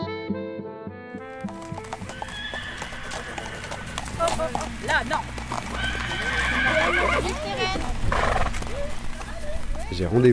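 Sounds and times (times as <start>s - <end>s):
horse hooves clip-clopping at a walk: 1.1s - 10.3s
trail-riding horse whinnying and snorting in Ille-et-Vilaine Brittany France: 2.0s - 4.1s, 5.7s - 7.5s, 8.1s - 8.6s
speech: 4.4s - 8.3s, 9.9s - 10.3s.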